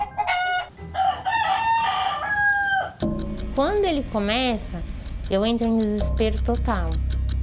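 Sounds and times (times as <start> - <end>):
neighbour's rooster crowing: 0.0 - 3.0
speech: 3.1 - 7.0.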